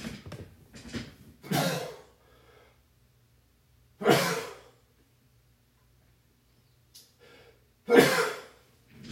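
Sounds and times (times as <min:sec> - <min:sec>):
loud sneezes: 0:01.4 - 0:02.1, 0:04.0 - 0:04.8, 0:07.9 - 0:08.6.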